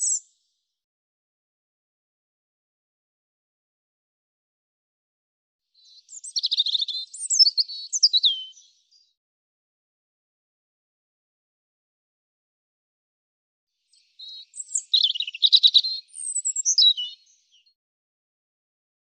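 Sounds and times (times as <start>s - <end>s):
European robin singing: 0.0s - 0.4s, 5.8s - 9.2s, 13.9s - 17.8s.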